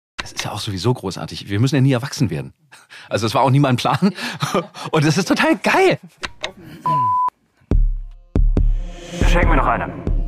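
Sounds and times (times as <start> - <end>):
speech: 0.3 - 7.1, 9.4 - 10.1
short electronic alarm beep: 6.9 - 7.3.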